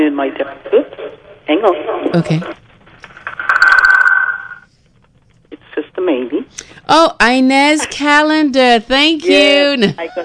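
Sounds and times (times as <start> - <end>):
speech: 0.2 - 2.6, 6.9 - 10.2
telephone ringing on a radio station call-in line: 3.3 - 4.7.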